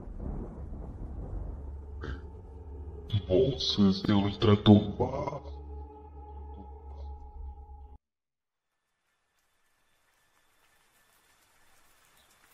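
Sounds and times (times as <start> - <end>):
steady rain falling at night: 0.0 - 2.3, 8.7 - 12.5
low humming drone: 0.2 - 8.0
speech: 3.3 - 5.5.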